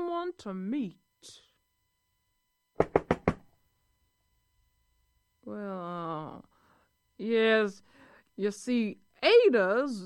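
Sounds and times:
speech: 0.3 - 1.4, 5.5 - 6.5, 7.2 - 10.0
knocking on a house door: 2.8 - 3.5.

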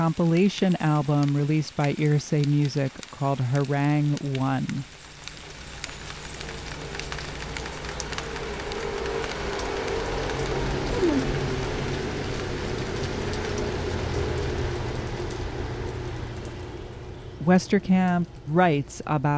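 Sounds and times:
speech: 0.0 - 5.0, 17.5 - 19.3
steady rain pattering on surfaces on the west coast of British Columbia Canada: 0.0 - 19.3.

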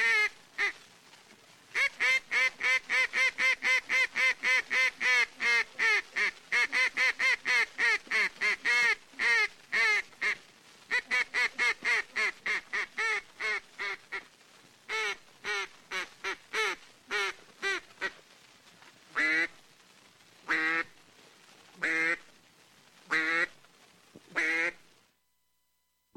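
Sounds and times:
duck calling in flooded timber at Stuttgart, Arkansas: 0.0 - 0.8, 1.7 - 14.3, 14.9 - 18.2, 19.2 - 19.5, 20.5 - 20.9, 21.8 - 22.2, 23.1 - 23.5, 24.3 - 24.8.

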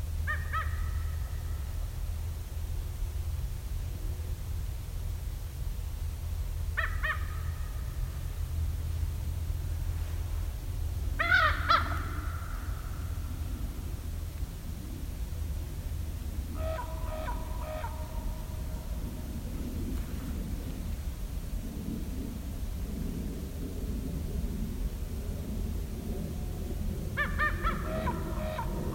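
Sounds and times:
low rumble: 0.0 - 28.9
raven croaking calls with a rolling trill: 0.2 - 1.8, 6.7 - 8.6, 11.1 - 14.2, 16.2 - 20.9, 27.1 - 28.9.

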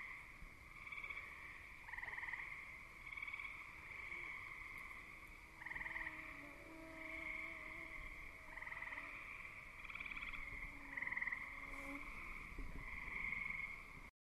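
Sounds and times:
night chorus of frogs and insects trilling outdoors: 0.0 - 14.1
thin wavering mosquito whine: 5.6 - 13.0.

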